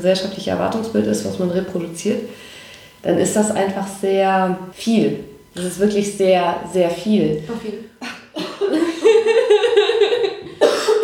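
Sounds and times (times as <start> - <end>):
speech: 0.0 - 8.8
laughter: 7.5 - 11.0
loud drawn-out raspy voiced cough: 10.5 - 11.0.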